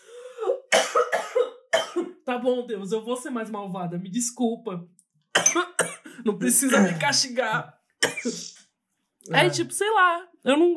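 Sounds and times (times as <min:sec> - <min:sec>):
woman coughing harshly after choking: 0:00.4 - 0:02.2, 0:05.4 - 0:07.2, 0:08.0 - 0:08.6
speech: 0:02.3 - 0:08.6, 0:09.2 - 0:10.7.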